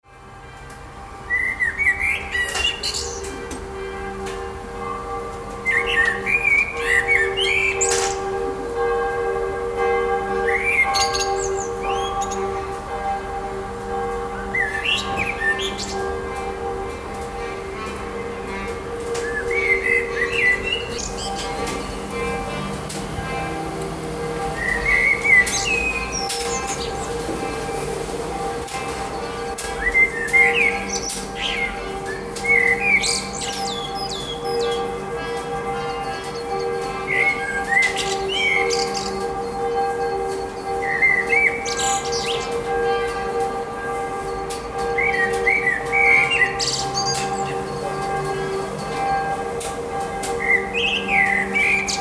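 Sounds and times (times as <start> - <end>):
evening bells ringing: 0.0 - 51.9
blackbird singing: 1.3 - 3.4, 5.6 - 8.3, 10.4 - 12.7, 14.5 - 16.1, 19.2 - 22.2, 24.5 - 27.8, 29.1 - 42.6, 44.3 - 48.2, 50.3 - 51.9
distant saxophone: 3.2 - 51.9.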